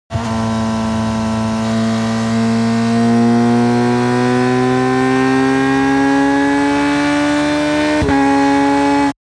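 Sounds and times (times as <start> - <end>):
racing motorcycle engine speeding up: 0.1 - 9.1.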